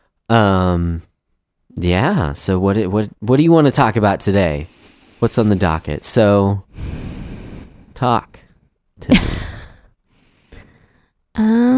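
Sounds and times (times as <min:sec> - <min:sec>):
speech: 0:00.3 - 0:01.1, 0:01.8 - 0:07.1, 0:08.0 - 0:08.4, 0:09.0 - 0:09.3, 0:11.4 - 0:11.7
soft airy breathing into the microphone: 0:04.6 - 0:08.7, 0:10.1 - 0:11.2.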